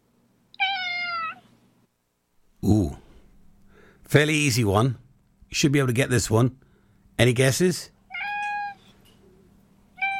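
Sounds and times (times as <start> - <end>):
cat meowing: 0.5 - 1.5, 8.1 - 8.9, 9.9 - 10.1
speech: 2.6 - 3.0, 4.1 - 6.6, 7.2 - 8.0.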